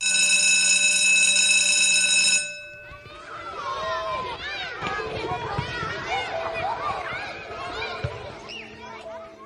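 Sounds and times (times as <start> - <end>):
loud continuous bell ringing: 0.0 - 3.2
crowd of children chattering and shouting: 0.3 - 9.4.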